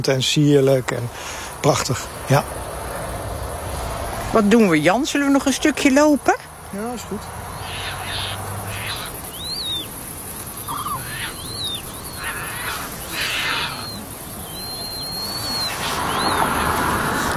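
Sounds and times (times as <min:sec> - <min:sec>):
speech: 0:00.0 - 0:02.6, 0:04.3 - 0:07.4
steady background noise: 0:00.0 - 0:17.3
harsh Caspian tern calls: 0:05.1 - 0:17.3
juvenile Caspian tern begging squeaks in a nature area in the Netherlands: 0:07.5 - 0:16.7.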